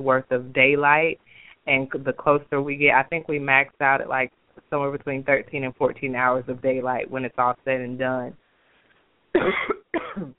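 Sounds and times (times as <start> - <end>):
speech: 0.0 - 8.4, 9.4 - 10.3
person coughing: 9.4 - 10.3.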